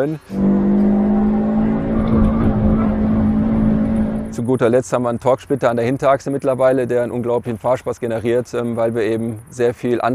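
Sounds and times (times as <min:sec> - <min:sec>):
speech: 0:00.0 - 0:00.8, 0:04.4 - 0:10.1
five-cylinder sports car engine revving: 0:00.3 - 0:04.4.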